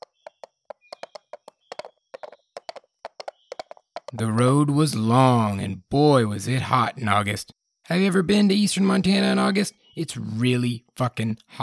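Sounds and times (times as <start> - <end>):
horse hooves galloping: 0.0 - 4.4
speech: 4.1 - 11.6.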